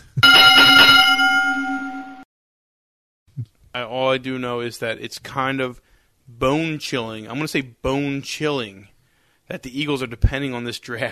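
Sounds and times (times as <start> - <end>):
single loud bright bell ringing: 0.0 - 2.3
speech: 3.7 - 8.9, 9.5 - 11.1.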